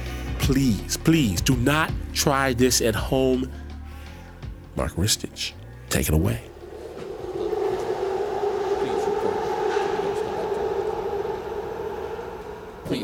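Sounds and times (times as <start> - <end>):
speech: 0.5 - 3.6, 4.8 - 6.5
New York City subway G train running between Brooklyn and Queens: 6.7 - 13.0.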